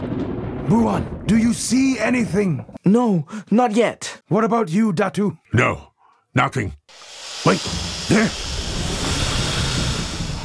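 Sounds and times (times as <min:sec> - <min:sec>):
speech: 0:00.7 - 0:08.5
sea waves surging with low rumbling undertow: 0:06.9 - 0:10.4
wind noise: 0:07.6 - 0:10.4.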